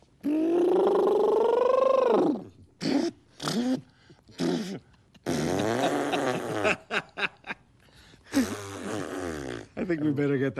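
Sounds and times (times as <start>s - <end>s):
person imitating an elephant's trumpet: 0.2s - 6.8s, 8.3s - 9.8s
speech: 10.1s - 10.5s.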